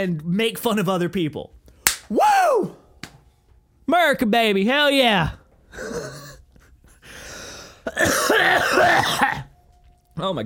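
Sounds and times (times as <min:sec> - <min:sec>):
speech: 0:00.0 - 0:02.8, 0:03.9 - 0:06.2, 0:07.9 - 0:09.4, 0:10.2 - 0:10.4
wheezing gasps: 0:05.7 - 0:08.0
harsh coughing fit: 0:05.7 - 0:09.6
throat-clearing rasp: 0:07.8 - 0:09.5.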